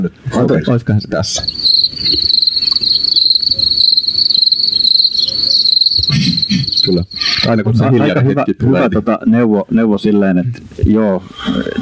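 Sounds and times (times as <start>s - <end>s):
speech: 0.0s - 3.2s, 5.3s - 11.8s
grasshopper chirping with a high-pitched buzzing trill: 1.3s - 7.7s
faint rhythmic pulses: 1.3s - 8.1s
laughter: 6.0s - 9.0s.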